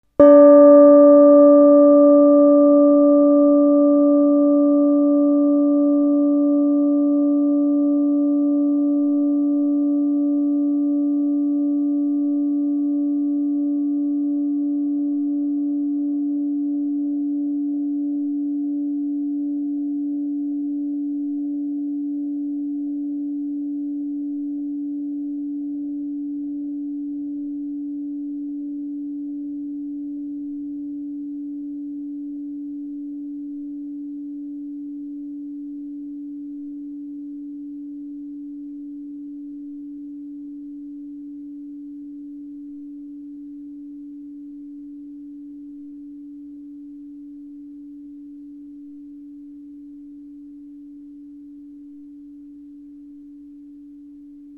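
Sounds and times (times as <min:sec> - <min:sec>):
oblong gong: 0:00.2 - 0:23.1.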